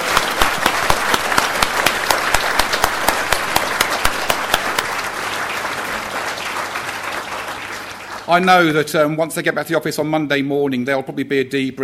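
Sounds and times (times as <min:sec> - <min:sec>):
crowd applauding: 0:00.0 - 0:08.9
speech: 0:08.3 - 0:11.8.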